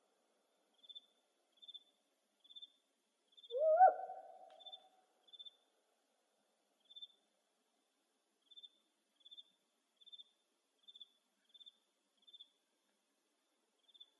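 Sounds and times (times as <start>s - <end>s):
faint high-pitched insect chirps in Arizona: 0.5s - 5.8s, 6.7s - 12.9s, 13.7s - 14.1s
spotted owl harsh rising bark: 3.4s - 5.0s.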